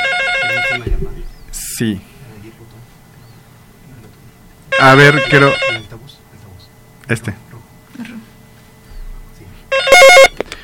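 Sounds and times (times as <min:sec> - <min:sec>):
telephone ringtone announcing an incoming call: 0:00.0 - 0:00.8, 0:04.7 - 0:05.9, 0:09.7 - 0:10.4
speech: 0:01.8 - 0:02.1, 0:04.8 - 0:05.7, 0:07.1 - 0:07.4.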